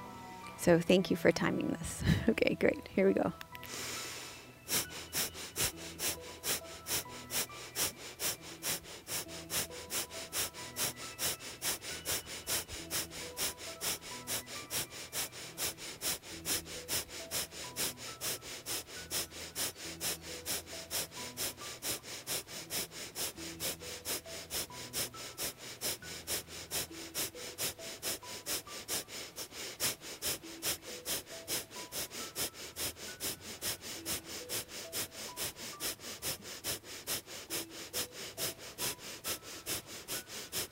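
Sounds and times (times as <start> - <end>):
speech: 0.6 - 4.0
rapid forceful nasal exhales of breath-of-fire breathing exercise: 3.7 - 40.6.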